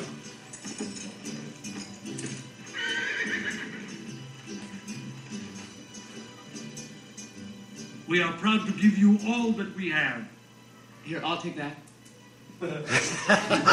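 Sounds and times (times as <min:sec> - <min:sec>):
horses riding off, clip-clop of hoofbeats: 0:00.0 - 0:06.9
horse neighing loudly: 0:02.6 - 0:04.1
speech: 0:08.1 - 0:10.4, 0:11.1 - 0:11.9, 0:12.6 - 0:13.7
laughter: 0:12.8 - 0:13.7.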